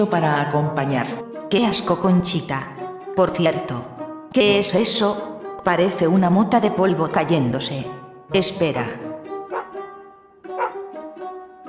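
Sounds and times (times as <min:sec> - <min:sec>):
speech: 0:00.0 - 0:09.1
dog barking sharp ringing barks: 0:09.5 - 0:09.8, 0:10.6 - 0:10.9.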